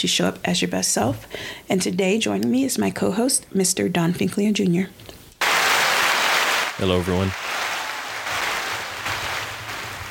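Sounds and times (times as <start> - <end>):
speech: 0.0 - 5.2, 6.8 - 7.4
preset applause sound effect of crowd clapping: 5.4 - 10.0.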